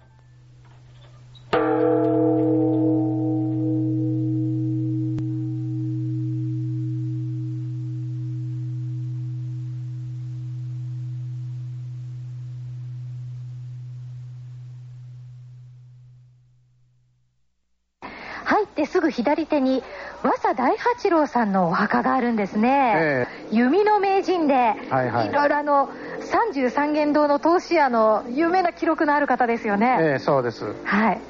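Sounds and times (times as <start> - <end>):
large Buddhist temple bell ringing: 1.6 - 16.4
speech: 18.9 - 31.2.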